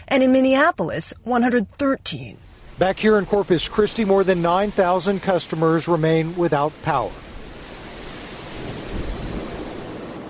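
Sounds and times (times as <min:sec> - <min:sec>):
speech: 0:00.1 - 0:07.2
gusting wind: 0:02.0 - 0:10.2
ocean waves crashing ashore on a stormy coast at Corpus Christi: 0:02.1 - 0:10.2
intermittent rain: 0:02.4 - 0:10.2.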